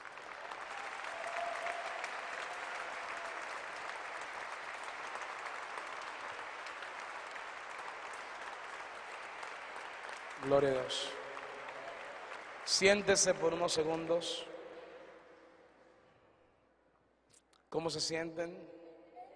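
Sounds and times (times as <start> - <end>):
crowd applauding in a large room: 0.0 - 14.5
speech: 10.4 - 11.2, 12.7 - 14.5, 17.7 - 18.8.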